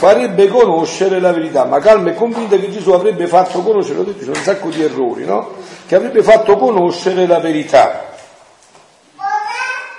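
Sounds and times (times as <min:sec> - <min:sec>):
speech: 0:00.0 - 0:08.1
young child letting out a high-pitched vocal sound: 0:09.1 - 0:09.9.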